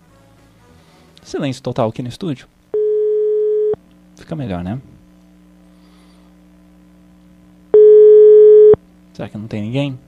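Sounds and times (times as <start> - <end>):
speech: 1.2 - 2.6, 4.3 - 4.9, 9.2 - 10.0
telephone ringback tone while a call is placed from a studio: 2.8 - 3.8, 7.8 - 8.8.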